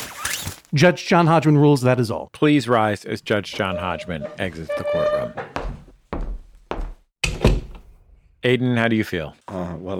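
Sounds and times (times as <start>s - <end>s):
speech: 0.7s - 5.5s, 8.4s - 9.9s
gavel banging: 3.5s - 5.9s.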